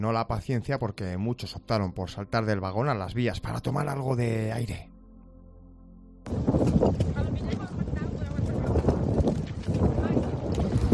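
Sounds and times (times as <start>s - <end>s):
speech: 0.0s - 4.9s, 6.3s - 7.7s
strong wind blowing outside a stopped train carriage: 6.3s - 10.9s.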